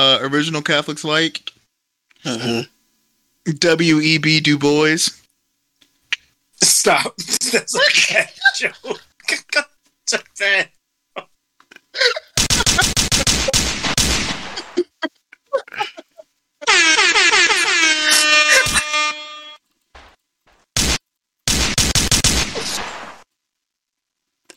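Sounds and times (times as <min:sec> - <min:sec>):
speech: 0:00.0 - 0:01.6, 0:02.2 - 0:02.7, 0:03.4 - 0:05.2, 0:06.6 - 0:11.3, 0:12.0 - 0:12.2
gunshot sound effects: 0:12.4 - 0:14.8, 0:20.0 - 0:23.3
blaring horn-like tone: 0:16.6 - 0:19.6.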